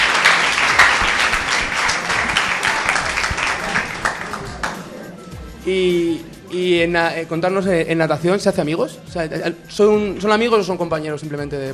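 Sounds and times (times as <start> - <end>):
audience applause: 0.0 - 5.0
speech: 5.7 - 11.7.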